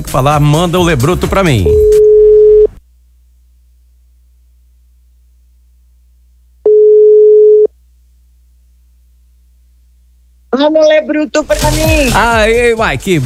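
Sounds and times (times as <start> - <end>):
speech: 0.1 - 1.8, 10.5 - 13.2
ringback tone of an outgoing telephone call: 1.6 - 2.8, 6.7 - 7.7.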